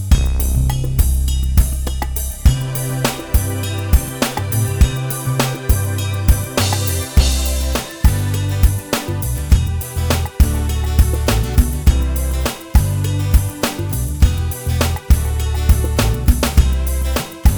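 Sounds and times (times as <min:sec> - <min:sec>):
backing track without lead guitar in the key of C: 0:00.1 - 0:17.5.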